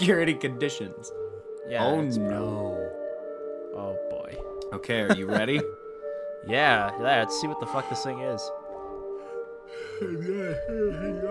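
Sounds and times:
speech: 0.0s - 2.8s, 3.8s - 5.8s, 6.4s - 8.6s, 9.7s - 11.2s
laughter: 5.0s - 5.7s
person yawning: 9.8s - 11.2s.

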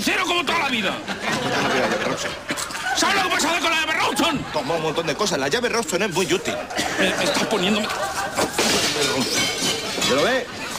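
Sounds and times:
speech: 0.0s - 8.2s, 10.1s - 10.6s
laughter: 0.8s - 10.7s
glass spiral pieces shattering: 8.5s - 10.3s.

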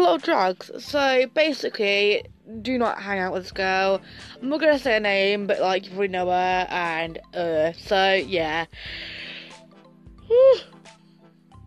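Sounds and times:
speech: 0.1s - 9.2s, 10.3s - 10.8s
person yawning with a voiced groan: 10.3s - 10.7s.

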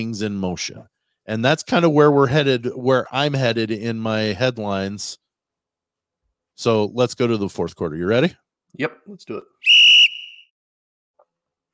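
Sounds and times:
speech: 0.0s - 5.2s, 6.6s - 10.0s
referee whistle blast: 9.6s - 10.5s.

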